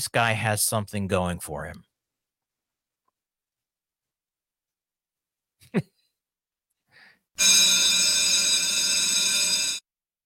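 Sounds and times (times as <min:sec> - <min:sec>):
speech: 0:00.0 - 0:01.9, 0:05.7 - 0:05.9, 0:07.4 - 0:07.7
bell ringing: 0:07.4 - 0:09.8.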